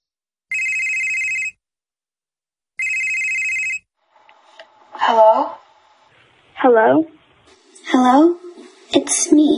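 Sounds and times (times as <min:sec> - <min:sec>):
telephone ringing with loud electronic trill: 0:00.5 - 0:01.6, 0:02.8 - 0:03.9
speech: 0:05.1 - 0:05.4, 0:06.6 - 0:07.2, 0:07.9 - 0:09.5.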